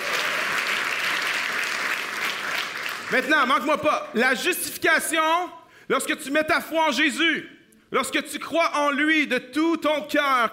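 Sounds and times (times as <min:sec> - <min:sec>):
crowd applauding: 0:00.0 - 0:04.1
speech: 0:03.1 - 0:10.5.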